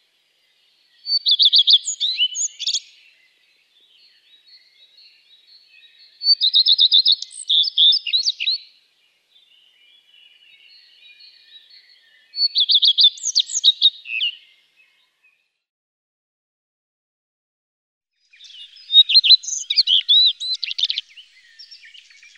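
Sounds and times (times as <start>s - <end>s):
common redstart singing quick repeated high notes with twittering finish: 0.0s - 15.7s, 18.2s - 22.3s.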